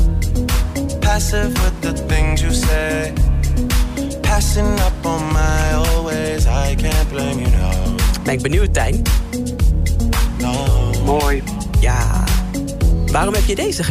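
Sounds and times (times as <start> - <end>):
smooth R&B song with male vocals, mellow beat and synth chords: 0.0 - 13.9
man singing over an R&B beat: 1.0 - 9.0, 10.3 - 12.6
speech: 1.2 - 3.7, 4.4 - 9.4, 10.4 - 12.3, 13.1 - 13.9.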